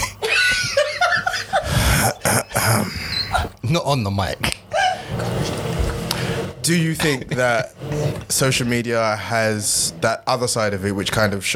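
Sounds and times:
short voiced hum: 0:00.0 - 0:00.5, 0:01.4 - 0:03.7
person clearing throat: 0:00.0 - 0:03.6
laughter: 0:00.0 - 0:09.0
speech: 0:03.7 - 0:04.6, 0:06.6 - 0:11.5.

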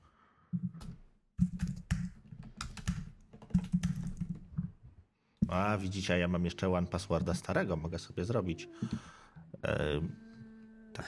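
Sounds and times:
computer keyboard clicking: 0:01.4 - 0:04.4
speech: 0:05.5 - 0:10.2.

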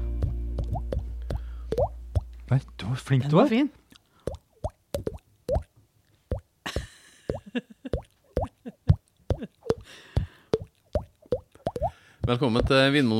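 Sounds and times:
two people imitating bubbling with wet mouth plops: 0:00.2 - 0:02.3, 0:03.9 - 0:05.7, 0:07.3 - 0:12.8
speech: 0:02.5 - 0:03.8, 0:12.3 - 0:13.1.

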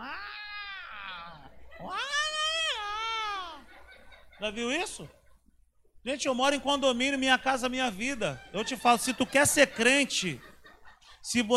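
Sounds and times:
cat in heat yowling: 0:00.0 - 0:03.7
laughter: 0:01.1 - 0:05.6, 0:06.5 - 0:11.5
speech: 0:04.4 - 0:05.2, 0:06.0 - 0:10.5, 0:11.2 - 0:11.5.

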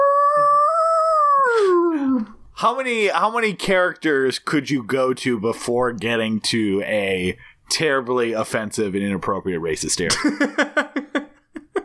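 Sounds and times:
person imitating a wolf howl: 0:00.0 - 0:02.4
speech: 0:02.6 - 0:11.2.

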